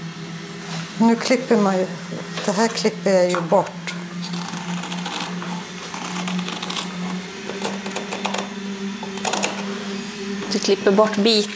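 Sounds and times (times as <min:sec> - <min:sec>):
speech: 0:01.0 - 0:03.8, 0:10.6 - 0:11.5
sewing machine stitching around fabric pieces backed with fusible interfacing: 0:04.2 - 0:09.7.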